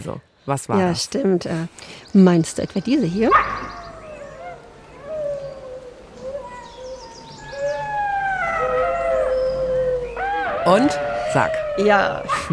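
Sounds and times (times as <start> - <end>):
speech: 0.0 - 3.8, 10.7 - 12.5
several golden jackals howling in a yipping chorus: 2.8 - 12.5.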